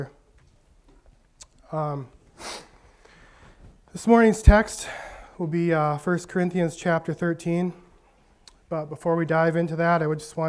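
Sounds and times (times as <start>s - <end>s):
speech: 1.7s - 2.6s, 3.9s - 7.8s, 8.7s - 10.4s
person sniffling from allergies: 2.4s - 3.6s.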